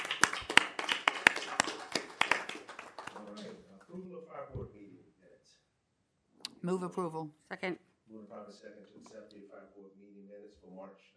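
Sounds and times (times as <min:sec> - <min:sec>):
a few people clapping at a fire board meeting: 0:00.0 - 0:04.0
speech: 0:06.6 - 0:11.1.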